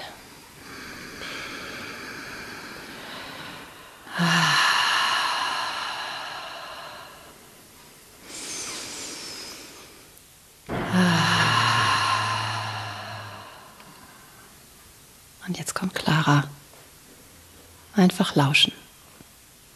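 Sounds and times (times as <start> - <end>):
deep breaths in through nose, out through mouth: 0.0 - 14.6
speech: 18.0 - 18.8.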